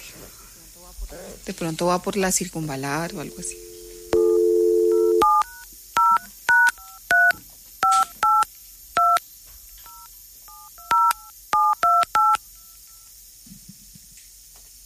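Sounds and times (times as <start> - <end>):
speech: 1.1 - 3.7
telephone keypad tones beeping as a call is placed: 3.1 - 8.4, 9.9 - 12.4
telephone dial tone: 3.4 - 5.4.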